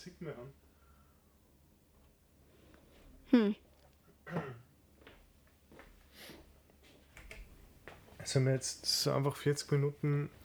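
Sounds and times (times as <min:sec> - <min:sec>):
speech: 0:00.0 - 0:00.7, 0:03.3 - 0:03.6, 0:08.3 - 0:10.4
throat clearing: 0:04.2 - 0:04.7
faint shuffling: 0:05.0 - 0:10.4.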